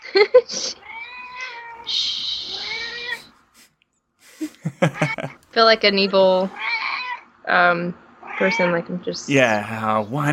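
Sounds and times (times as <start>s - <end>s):
speech: 0.1s - 0.8s, 4.8s - 6.6s, 7.5s - 10.3s
cat meowing: 0.8s - 3.3s, 5.0s - 5.4s, 6.1s - 7.2s, 8.2s - 8.8s
laughter: 4.3s - 5.4s.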